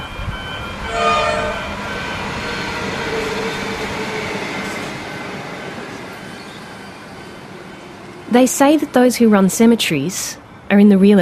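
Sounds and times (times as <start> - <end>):
brief tonal horn-like whine of train: 0.0 - 4.9
commuter train passing beside cemetery: 0.0 - 11.2
speech: 8.4 - 11.2.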